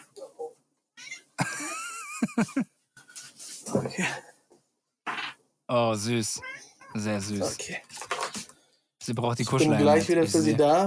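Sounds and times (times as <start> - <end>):
laughter: 1.4 - 2.7
speech: 2.4 - 2.8, 3.7 - 4.3, 5.7 - 7.9, 9.1 - 10.8
cat meowing with a drawn-out wavering cry: 6.4 - 7.0.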